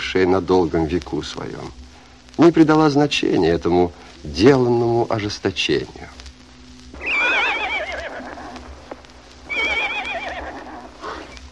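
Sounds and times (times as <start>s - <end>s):
low steady hum: 0.0s - 11.5s
speech: 0.1s - 1.8s, 2.4s - 6.2s
horse neighing: 7.0s - 8.6s, 9.5s - 11.3s.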